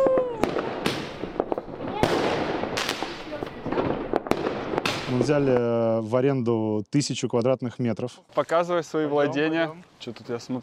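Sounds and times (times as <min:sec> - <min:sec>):
fireworks sound effect popping and crackling: 0:00.0 - 0:05.8
speech: 0:05.1 - 0:10.6.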